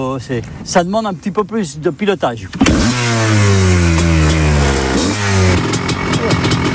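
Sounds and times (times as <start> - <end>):
speech: 0.0 - 3.6
combustion motorcycle engine revving through gear changes as the bike is ridden: 2.5 - 6.7.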